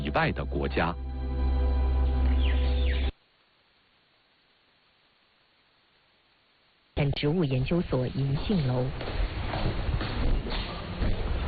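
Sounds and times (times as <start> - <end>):
steady hiss: 0.0 - 11.4
speech: 0.2 - 1.0, 7.2 - 9.8
footsteps on a hard indoor office floor: 8.4 - 11.4.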